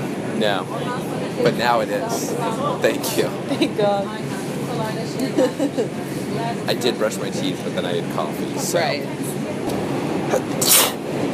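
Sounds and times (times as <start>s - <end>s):
speech: 0.4s - 10.9s
laughter: 3.1s - 4.1s, 5.2s - 6.3s
sharp sneeze: 10.3s - 11.0s.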